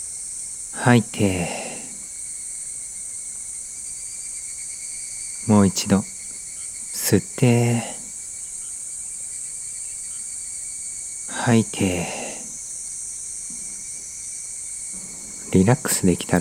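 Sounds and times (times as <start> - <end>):
bell crickets chirping: 0.0 - 16.3
speech: 0.8 - 1.6, 5.5 - 6.2, 7.1 - 8.0, 11.4 - 12.2, 15.5 - 16.3
person speaking softly and calmly: 0.8 - 2.0, 5.5 - 6.0, 7.0 - 8.1, 11.3 - 12.5, 15.4 - 16.3.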